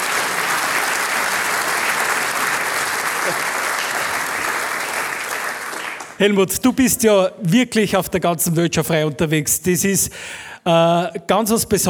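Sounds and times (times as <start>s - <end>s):
audience applause: 0.0s - 6.3s
speech: 3.3s - 3.5s, 6.2s - 11.8s.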